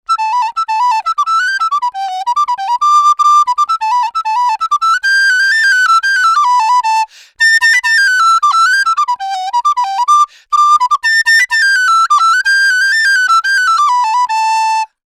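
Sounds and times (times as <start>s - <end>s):
equalized flute: 0.1s - 15.0s.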